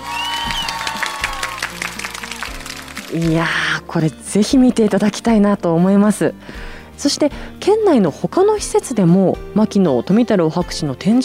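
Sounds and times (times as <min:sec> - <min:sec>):
applause from a group of people: 0:00.0 - 0:03.6
speech: 0:03.1 - 0:11.2.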